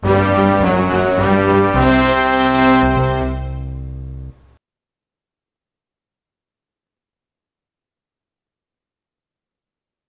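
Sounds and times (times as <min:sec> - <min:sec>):
ringing music: 0:00.0 - 0:04.4.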